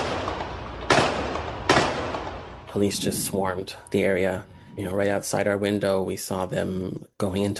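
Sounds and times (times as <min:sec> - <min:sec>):
gunshots: 0:00.0 - 0:02.9
hiss: 0:02.5 - 0:07.5
speech: 0:02.8 - 0:07.5.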